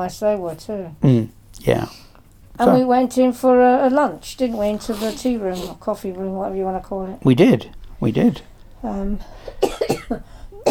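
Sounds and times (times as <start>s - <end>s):
speech: 0.0s - 10.4s
person coughing from a tickle in the throat: 9.4s - 10.6s.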